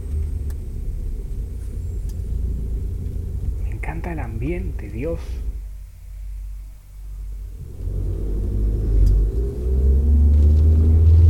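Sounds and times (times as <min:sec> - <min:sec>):
faint road noise: 0:00.0 - 0:11.2
low car engine rumble while driving: 0:00.0 - 0:11.2
speech: 0:04.0 - 0:05.5.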